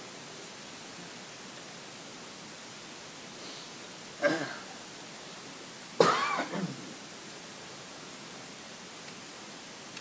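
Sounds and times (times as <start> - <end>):
coughing with phlegm in the throat during winter: 4.2 - 4.8, 6.0 - 6.9.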